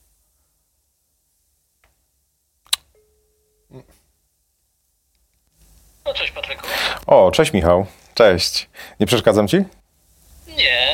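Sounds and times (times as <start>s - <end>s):
sharp click: 2.6s - 2.9s
speech: 3.7s - 4.0s, 7.1s - 9.8s.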